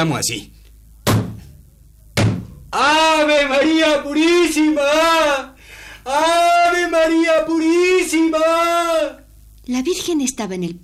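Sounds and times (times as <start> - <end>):
speech: 0.0 - 0.6, 2.8 - 10.8
heavy booming knocks on a door: 2.2 - 2.6.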